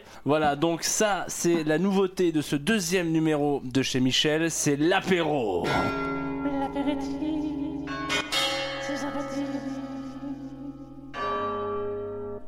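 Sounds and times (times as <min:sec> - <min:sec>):
speech: 0:00.1 - 0:06.1, 0:06.8 - 0:07.3
village church bell ringing: 0:05.6 - 0:12.4.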